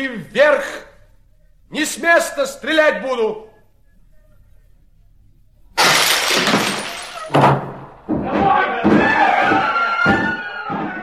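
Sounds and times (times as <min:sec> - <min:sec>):
speech: 0:00.0 - 0:00.8, 0:01.7 - 0:03.5
door being violently broken down: 0:05.8 - 0:11.0
agitated people shouting: 0:08.1 - 0:11.0.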